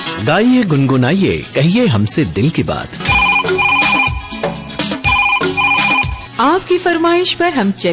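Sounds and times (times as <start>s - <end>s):
speech: 0.3s - 3.0s, 6.4s - 7.9s
phone ringing with electronic ringtone melody: 3.1s - 6.3s.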